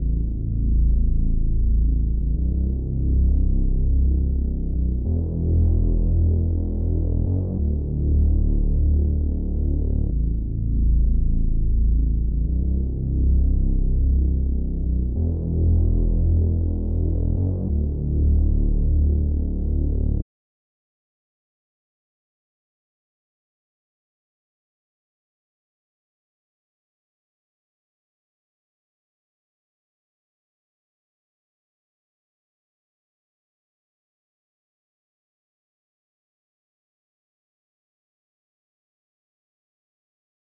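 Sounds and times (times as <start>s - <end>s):
95 BPM bass melody loop in E minor: 0.0s - 20.2s.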